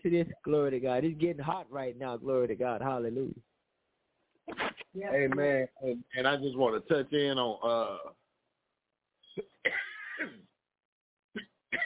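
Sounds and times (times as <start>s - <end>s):
speech: 0.0s - 3.5s, 4.5s - 8.2s, 9.4s - 10.5s
preacher clearing throat and coughing at a church service: 9.4s - 10.5s, 11.4s - 11.8s.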